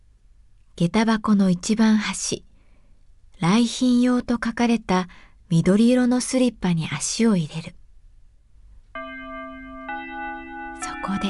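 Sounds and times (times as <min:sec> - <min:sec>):
speech: 0:00.8 - 0:02.5, 0:03.4 - 0:07.8, 0:11.1 - 0:11.2
school chime with two bell-like tones: 0:09.0 - 0:11.2.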